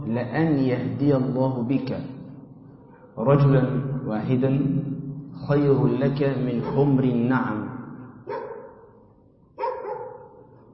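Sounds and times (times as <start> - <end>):
speech: 0.1 - 2.2, 3.2 - 7.7
dog barking: 8.2 - 9.0, 9.6 - 10.6.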